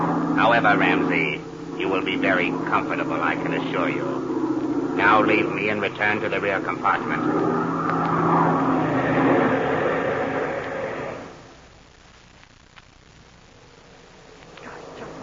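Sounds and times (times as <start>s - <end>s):
airplane engine throttling down for landing: 0.0s - 11.4s
speech: 0.4s - 4.2s, 5.0s - 7.6s.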